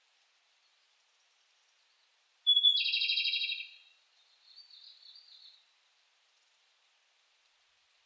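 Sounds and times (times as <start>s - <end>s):
Japanese robin song with whistled note and rapid trill: 2.0s - 5.6s.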